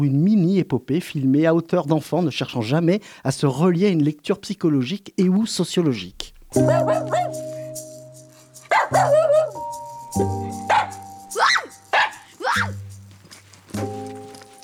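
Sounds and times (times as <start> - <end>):
speech: 0.0 - 7.4
dogs barking: 6.6 - 7.6, 8.7 - 9.7, 10.6 - 14.6.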